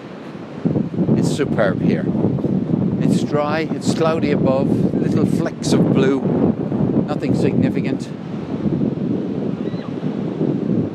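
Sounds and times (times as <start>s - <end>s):
sea waves washing onto a beach: 0.0s - 10.9s
wind buffeting: 0.0s - 10.9s
speech: 1.4s - 2.4s, 3.0s - 6.5s, 7.1s - 8.3s.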